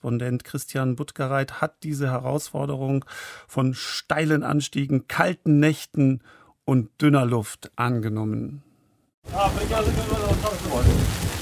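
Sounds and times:
speech: 0:00.0 - 0:11.3
steady heavy rain drumming on tent fabric: 0:09.2 - 0:11.3
deep low rumble of thunder: 0:09.3 - 0:11.3.

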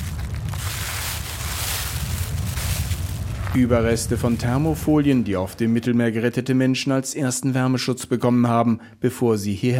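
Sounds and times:
strong gusty wind on a stormy island of Lampedusa: 0:00.0 - 0:05.6
speech: 0:03.6 - 0:09.7.

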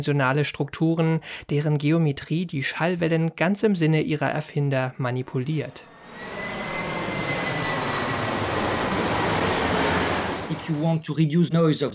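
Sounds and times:
speech: 0:00.0 - 0:06.5, 0:10.7 - 0:11.9
aircraft turbine engine roar with faint high whine: 0:05.9 - 0:11.0.

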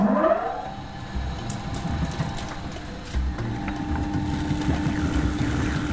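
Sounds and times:
stone grain mill motor whine: 0:00.0 - 0:05.9
stone grain mill grinding rye: 0:01.2 - 0:05.9.

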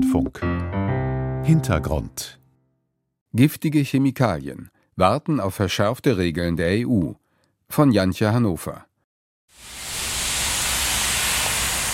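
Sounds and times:
speech: 0:00.0 - 0:00.7, 0:01.4 - 0:02.4, 0:03.3 - 0:08.9
steam venting from an industrial chimney: 0:09.6 - 0:11.9.

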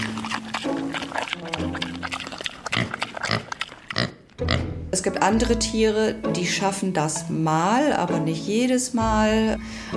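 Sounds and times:
pig grunting, snorting and squealing: 0:00.0 - 0:04.8
speech: 0:04.9 - 0:09.9.

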